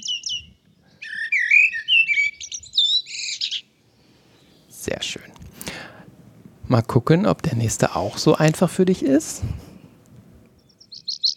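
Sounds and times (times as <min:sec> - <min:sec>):
brief high chirps: 0:00.0 - 0:03.7, 0:10.6 - 0:11.3
common blackbird singing: 0:00.0 - 0:04.8, 0:10.6 - 0:11.3
speech: 0:06.7 - 0:09.7.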